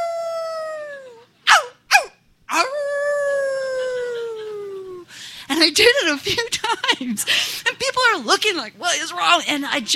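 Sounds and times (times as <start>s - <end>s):
person howling like a dog: 0.0s - 5.0s
person yelping: 0.0s - 5.0s
speech: 5.6s - 9.9s.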